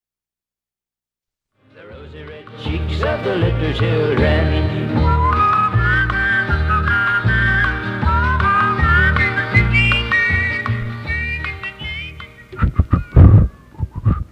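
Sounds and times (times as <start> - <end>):
steady instrumental accompaniment: 1.8 - 13.7
speech: 2.6 - 5.1
person whistling a wavering tune: 4.8 - 14.3.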